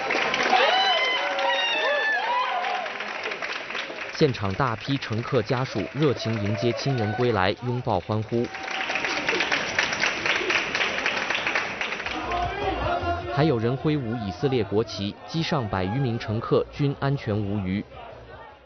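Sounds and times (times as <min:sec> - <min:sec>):
crowd of passengers' families cheering at Ben Gurion International Airport in Tel Aviv: 0:00.0 - 0:03.3, 0:04.2 - 0:18.6
scattered clapping of families welcoming returning relatives: 0:00.0 - 0:13.0.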